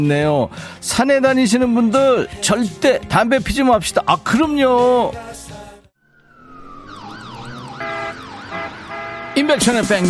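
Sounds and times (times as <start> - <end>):
speech: 0.0 - 5.4, 9.4 - 10.0
music: 0.0 - 6.0, 9.5 - 10.0
warbling tone: 6.0 - 8.5
emergency vehicle siren wailing: 6.0 - 10.0.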